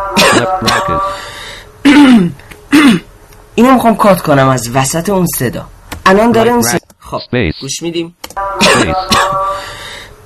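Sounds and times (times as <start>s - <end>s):
person coughing and clearing throat: 0.2s - 1.2s, 1.8s - 3.1s, 8.6s - 9.6s
speech: 0.4s - 1.3s, 1.9s - 9.4s.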